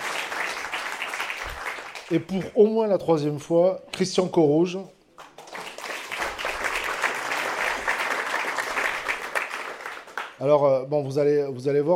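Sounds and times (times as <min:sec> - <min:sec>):
audience applauding to welcome a guest: 0:00.0 - 0:02.4, 0:05.2 - 0:10.4
speech: 0:02.1 - 0:05.0, 0:10.4 - 0:11.9.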